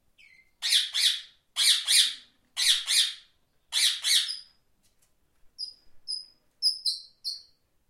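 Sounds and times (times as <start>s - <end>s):
parrot squawking in harsh paired calls: 0.2s - 4.4s.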